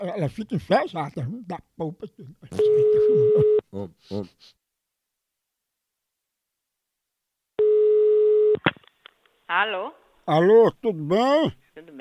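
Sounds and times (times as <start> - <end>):
speech: 0.0 - 4.6, 9.5 - 11.9
laughter: 1.5 - 4.5
telephone dial and ringing tones: 2.6 - 3.6, 7.6 - 8.6.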